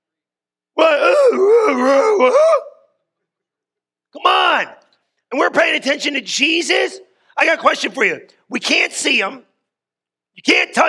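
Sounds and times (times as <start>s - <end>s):
person imitating zombie groan: 0.8s - 2.8s
speech: 5.4s - 9.5s, 10.4s - 10.8s.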